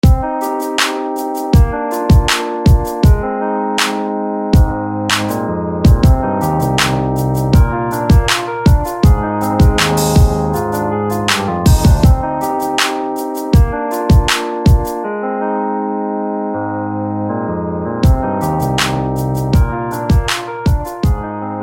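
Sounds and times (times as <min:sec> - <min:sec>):
Rhodes electric piano: 0:00.0 - 0:21.6.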